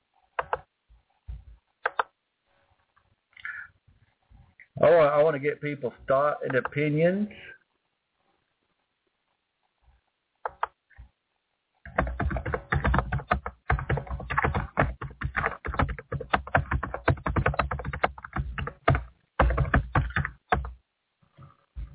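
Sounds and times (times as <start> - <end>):
speech: 4.8 - 7.5
rapid typing on a computer keyboard: 11.8 - 20.8.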